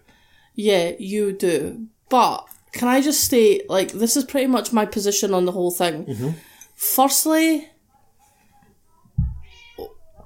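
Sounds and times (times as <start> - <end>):
speech: 0.6 - 7.7
dull low thump: 9.2 - 9.5
cat meowing: 9.2 - 10.2.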